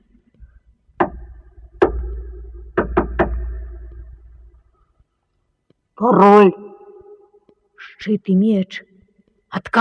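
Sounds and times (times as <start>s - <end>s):
sharp knocks on a wooden door: 1.0s - 3.9s
dull resonant thud: 1.0s - 4.6s
speech: 6.0s - 6.6s, 8.0s - 8.9s, 9.5s - 9.7s.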